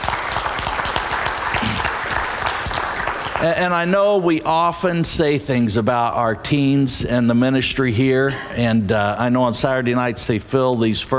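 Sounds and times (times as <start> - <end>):
crowd applauding: 0.0 - 4.0
speech: 3.4 - 11.1.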